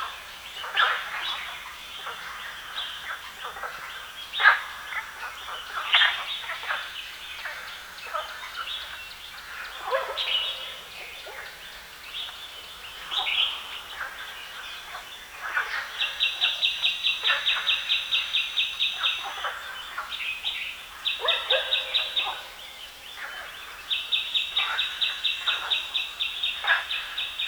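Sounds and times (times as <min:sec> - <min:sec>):
frogs croaking in a chorus beside a reservoir: 0:00.0 - 0:27.4.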